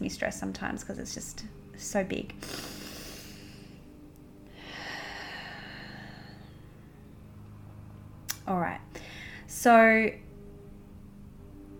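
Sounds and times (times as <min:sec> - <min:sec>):
speech: 0:00.1 - 0:02.8, 0:08.5 - 0:10.2
slow deep breath in and long audible exhale: 0:02.4 - 0:07.1, 0:08.9 - 0:09.5.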